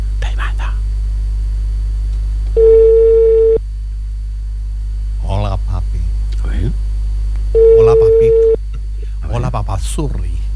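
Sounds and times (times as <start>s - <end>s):
low hum: 0.0s - 10.5s
telephone ringing tone: 2.6s - 3.6s, 7.6s - 8.6s
speech: 10.0s - 10.4s.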